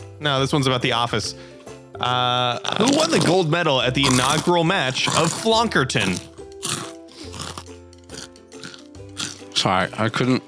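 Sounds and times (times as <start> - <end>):
speech: 0.2 - 6.3, 9.6 - 10.4
person crunching crispy nacho cheese chips: 2.6 - 9.5.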